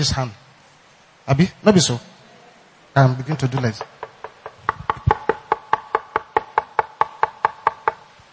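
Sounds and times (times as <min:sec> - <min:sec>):
speech: 0:00.0 - 0:00.4, 0:01.3 - 0:02.1, 0:03.0 - 0:04.0
knuckles knocking on a wooden pulpit: 0:03.6 - 0:08.1.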